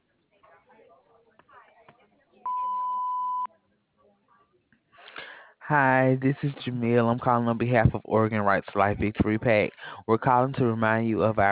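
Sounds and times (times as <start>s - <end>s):
answering machine beep: 2.5s - 3.5s
speech: 5.7s - 11.4s.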